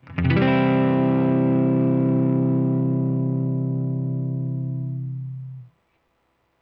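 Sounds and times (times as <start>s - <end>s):
major triad: 0.0s - 5.7s.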